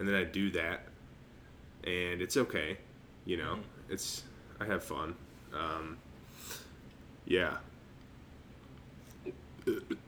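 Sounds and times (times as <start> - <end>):
speech: 0.0 - 0.9, 1.8 - 6.6, 7.3 - 7.7, 9.2 - 10.0
weak half-hearted burp: 9.3 - 10.0.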